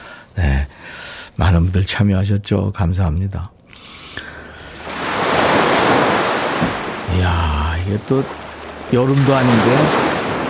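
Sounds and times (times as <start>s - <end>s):
speech: 1.4s - 3.6s, 7.9s - 10.0s
ocean waves washing onto a beach: 4.3s - 10.4s.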